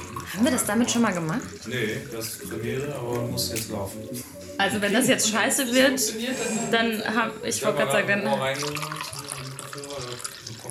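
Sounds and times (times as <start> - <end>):
drink being poured into a glass: 0.0 - 3.2, 8.3 - 10.6
speech: 0.3 - 9.4.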